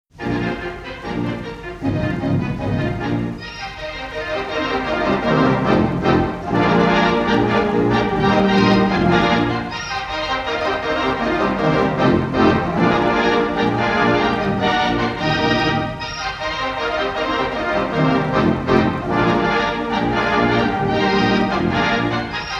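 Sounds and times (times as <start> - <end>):
organ: 0.1 - 22.5.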